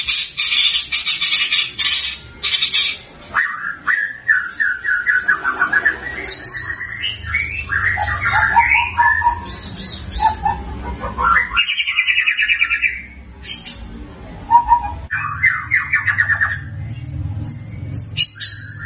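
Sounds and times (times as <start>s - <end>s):
White-rumped shama song: 0.0s - 18.8s.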